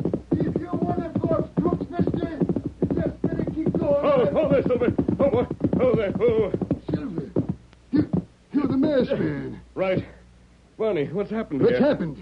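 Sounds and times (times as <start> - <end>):
horse galloping hoofbeats: 0.0 - 9.4
speech: 4.5 - 6.7, 9.0 - 10.2, 10.8 - 12.1.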